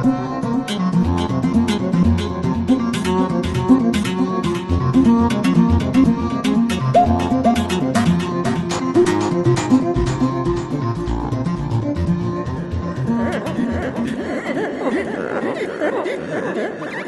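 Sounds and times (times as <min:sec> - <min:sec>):
V-Synth synthesizer arpeggios: 0:00.1 - 0:13.8
electronic percussive patterns: 0:00.5 - 0:14.1
synthesizer built-in special effects: 0:02.7 - 0:10.7
laughter: 0:13.1 - 0:17.0.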